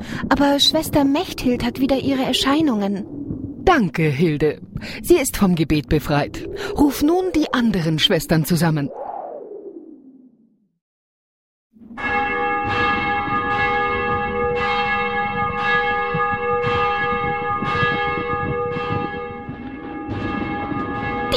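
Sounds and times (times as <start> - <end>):
speech: 0.3 - 9.0
whoosh: 8.8 - 10.6
church bell ringing for vespers: 11.8 - 21.3.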